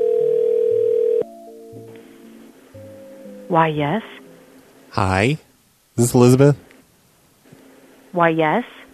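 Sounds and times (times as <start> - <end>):
telephone dial tone of outgoing call: 0.0 - 1.3
speech: 3.5 - 4.2, 4.9 - 6.6, 8.1 - 8.8.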